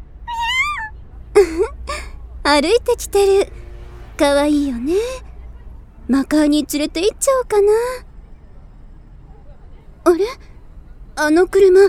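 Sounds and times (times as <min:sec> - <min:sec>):
cat meowing: 0:00.3 - 0:00.9
speech: 0:02.5 - 0:03.6, 0:04.2 - 0:05.3, 0:06.1 - 0:08.1, 0:10.1 - 0:10.5, 0:11.2 - 0:11.8.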